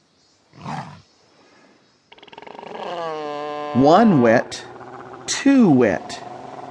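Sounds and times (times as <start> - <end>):
lion roaring: 2.3 - 6.6
speech: 3.7 - 4.7, 5.3 - 6.2.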